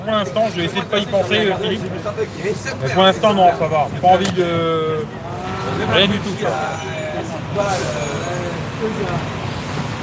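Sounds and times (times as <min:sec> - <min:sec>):
speech: 0:00.0 - 0:07.0, 0:07.6 - 0:09.4
garbage truck engine rumbling: 0:03.5 - 0:10.0.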